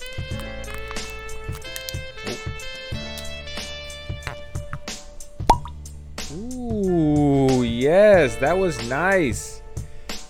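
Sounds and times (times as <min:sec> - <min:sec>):
cork popping from bourbon bottle being opened: 0:00.0 - 0:06.4
music: 0:00.0 - 0:10.2
speech: 0:07.9 - 0:09.6.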